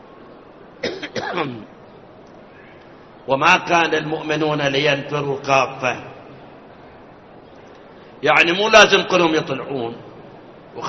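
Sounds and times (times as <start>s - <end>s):
person coughing during a lecture: 0.8s - 1.6s
speech: 1.3s - 1.8s, 3.2s - 6.1s, 8.2s - 10.0s.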